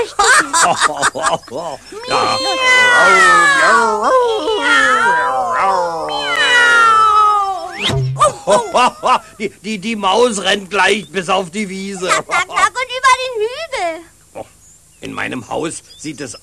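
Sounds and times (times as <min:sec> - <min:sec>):
laughter: 0:00.0 - 0:06.1, 0:08.2 - 0:09.6, 0:12.0 - 0:12.8
speech: 0:00.0 - 0:06.1, 0:07.8 - 0:12.7, 0:13.8 - 0:16.4
cat meowing: 0:01.9 - 0:07.8.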